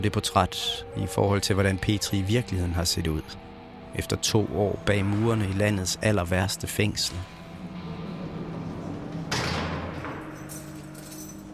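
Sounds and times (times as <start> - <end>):
speech: 0.0 - 7.4
faint rumbling: 2.2 - 11.5
prison gate in an old workhouse jail shut and locked: 7.3 - 11.5
soft lingering rattle of the prison gate: 8.2 - 11.5.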